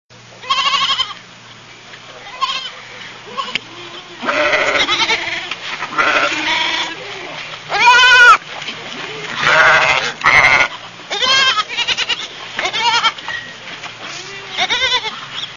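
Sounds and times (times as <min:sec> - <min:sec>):
sheep baaing: 0:02.2 - 0:08.4, 0:09.3 - 0:13.2, 0:14.1 - 0:15.2.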